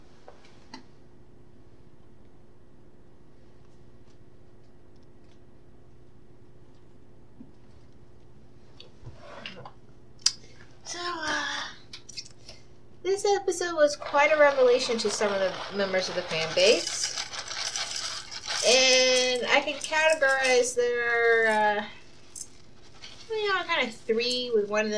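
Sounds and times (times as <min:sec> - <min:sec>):
quiet hum: 0:00.0 - 0:24.9
speech: 0:13.5 - 0:17.0, 0:19.5 - 0:21.9, 0:23.4 - 0:24.9
chewing crisp Rice Krispie cereal flakes: 0:14.0 - 0:20.6.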